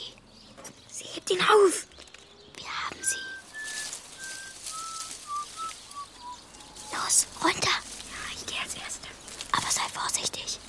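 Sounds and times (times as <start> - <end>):
faint rustling noise: 0.4 - 10.6
speech: 1.3 - 1.9
person whistling casually: 3.0 - 6.4.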